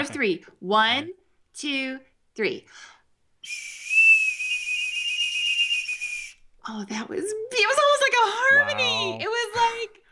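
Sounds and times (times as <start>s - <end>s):
speech: 0.0s - 3.8s, 6.6s - 10.0s
two plastic toy whistles blown together: 3.4s - 6.4s.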